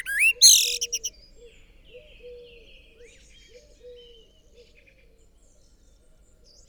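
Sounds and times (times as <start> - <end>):
common blackbird singing: 0.1 - 1.1.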